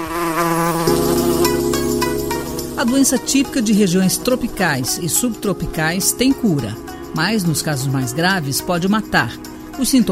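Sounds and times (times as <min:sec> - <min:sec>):
female Anopheles mosquito buzzing: 0:00.0 - 0:03.2
speech: 0:02.8 - 0:10.1.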